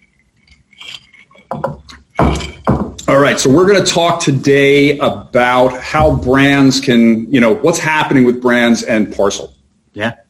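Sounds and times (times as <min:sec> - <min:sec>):
glasses clinking in a toast: 0:00.0 - 0:03.3
speech: 0:03.2 - 0:10.2.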